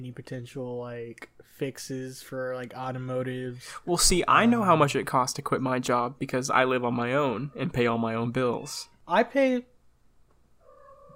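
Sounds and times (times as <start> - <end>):
speech: 0.0 - 9.7
cat in heat yowling meow: 10.6 - 11.1.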